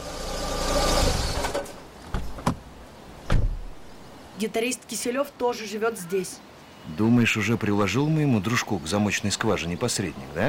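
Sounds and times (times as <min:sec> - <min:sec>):
car engine rumbling and winding down as it stops at a dairy plant dormitory: 0:00.0 - 0:01.8
car door clunks: 0:03.3 - 0:03.7
speech: 0:04.4 - 0:10.4.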